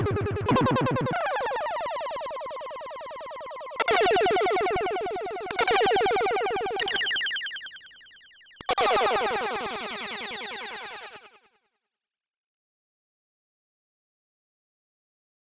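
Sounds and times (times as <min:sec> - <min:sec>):
square wave delay effect: 0:00.2 - 0:11.4.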